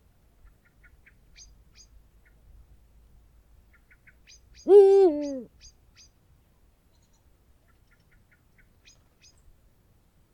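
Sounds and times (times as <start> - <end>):
Eurasian eagle-owl giving a deep hoot: 4.7 - 5.5.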